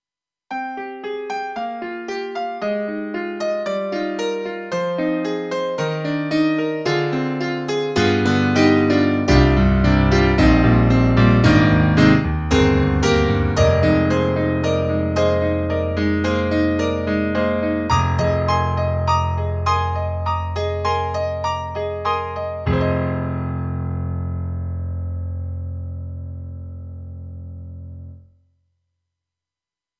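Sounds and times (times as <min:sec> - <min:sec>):
rock piano on a synthesizer expansion board: 0:00.5 - 0:28.2.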